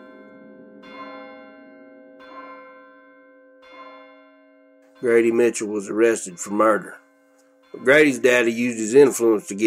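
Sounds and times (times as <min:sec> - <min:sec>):
church bell tolling: 0:00.0 - 0:09.6
speech: 0:05.0 - 0:07.0, 0:07.8 - 0:09.6.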